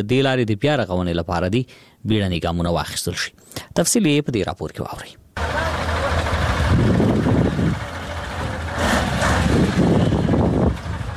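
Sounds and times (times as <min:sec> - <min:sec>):
speech: 0:00.0 - 0:05.8
large truck engines on a muddy flood-damaged highway between Uruzgan and Kandahar: 0:05.4 - 0:11.1.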